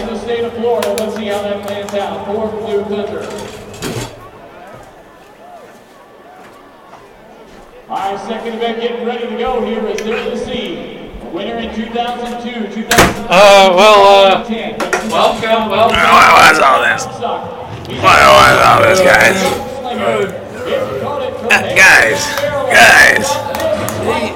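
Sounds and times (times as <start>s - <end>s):
loud crowd chatter: 0.0s - 24.3s
speech: 0.3s - 3.6s, 8.0s - 24.3s
booth door thudding shut: 12.9s - 13.3s.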